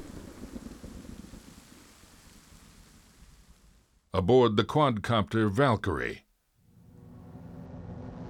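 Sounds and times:
heavy low thunder rumbling: 0.0 - 4.0
constant wash of rain: 0.0 - 4.1
speech: 4.2 - 6.2.

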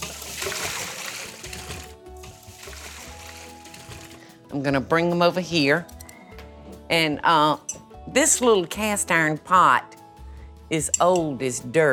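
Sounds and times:
water poured off boiled potatoes into a sink: 0.0 - 4.2
speech: 4.5 - 6.0, 6.9 - 10.0, 10.7 - 11.9.

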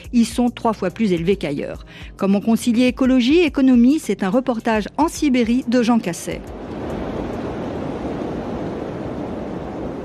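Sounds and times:
speech: 0.1 - 6.7
cold wind blowing across an open mountain plateau: 6.4 - 10.0.

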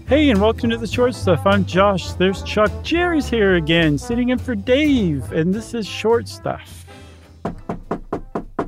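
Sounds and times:
speech: 0.1 - 6.9
knuckles knocking on wood: 7.4 - 8.6.

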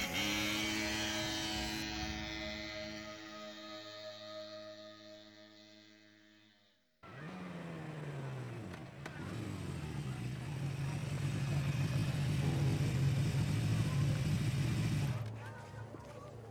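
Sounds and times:
small old rusty moped engine starting and speeding off: 0.0 - 3.5, 7.0 - 16.4.

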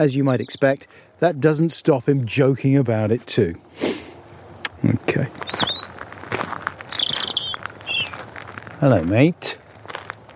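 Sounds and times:
speech: 0.0 - 4.0, 4.8 - 5.6, 8.8 - 9.6
small bird in a tree chirping: 0.3 - 0.8, 5.3 - 8.3.

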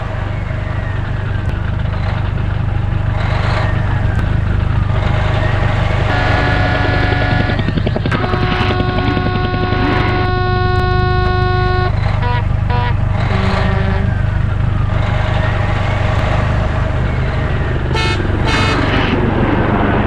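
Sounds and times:
idling car engines rumbling in a traffic jam: 0.0 - 20.0
car horns honking in a traffic jam: 6.0 - 14.3, 17.8 - 19.2.

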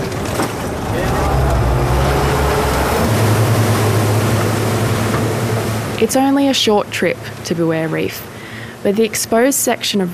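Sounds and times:
rushing water: 0.0 - 7.4
boat motor running on a trip out to a coastal reef: 0.0 - 8.1
speech: 6.0 - 10.1.

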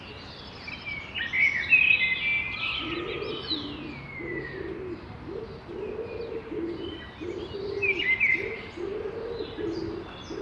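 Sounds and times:
birds chirping at dawn around a cathedral square: 0.0 - 10.4
soft city hum: 0.0 - 10.4
pigeon cooing low: 2.8 - 10.4.

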